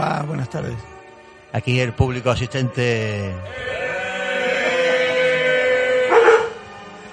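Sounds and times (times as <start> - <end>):
speech: 0.2 - 3.7
dog sustained tonal cry: 3.5 - 6.7.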